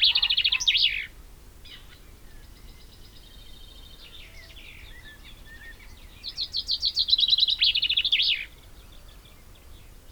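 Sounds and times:
common chaffinch Fringilla coelebs singing: 0:00.0 - 0:10.1.

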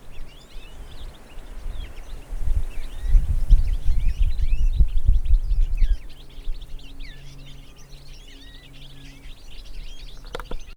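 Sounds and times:
European goldfinch Carduelis carduelis twittering: 0:00.0 - 0:10.7
sharp click: 0:10.2 - 0:10.6.

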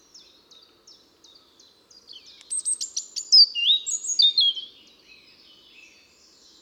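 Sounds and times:
European robin Erithacus rubecula singing: 0:02.1 - 0:06.0.

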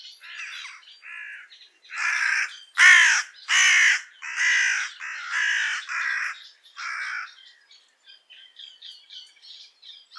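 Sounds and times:
small birds twittering: 0:00.0 - 0:10.1
carrion crow Corvus corone giving rough hoarse caws: 0:00.3 - 0:07.4.

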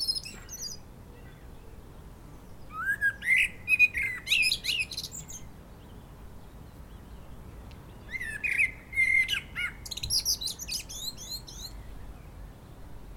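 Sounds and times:
Common blackbird Turdus merula song: 0:00.0 - 0:13.1.

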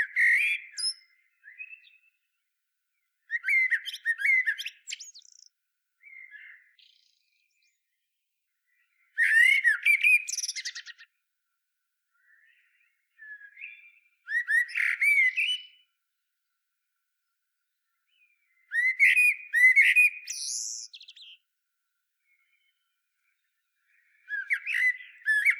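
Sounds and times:
common blackbird Turdus merula singing: 0:00.0 - 0:02.3, 0:03.2 - 0:08.0, 0:08.7 - 0:11.1, 0:12.1 - 0:15.9, 0:18.1 - 0:21.4, 0:22.2 - 0:25.5.

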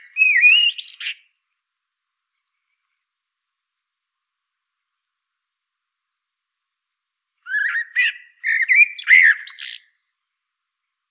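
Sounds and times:
common blackbird Turdus merula singing a fluty warbled phrase: 0:00.0 - 0:01.3, 0:07.5 - 0:09.9.

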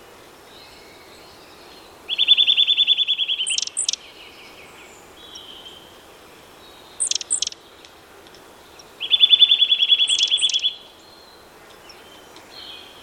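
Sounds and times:
Eurasian nuthatch Sitta europaea trilling: 0:02.1 - 0:04.0, 0:07.0 - 0:07.6, 0:09.0 - 0:10.8.

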